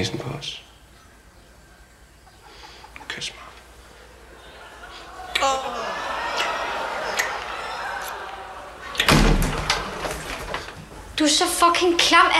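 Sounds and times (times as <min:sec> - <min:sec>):
speech: 0:00.0 - 0:00.7, 0:03.2 - 0:03.4, 0:11.2 - 0:12.3
faint vocal sounds: 0:03.0 - 0:08.8
laughter: 0:03.8 - 0:10.8
door bursting open with a bang and rattle: 0:08.8 - 0:11.0.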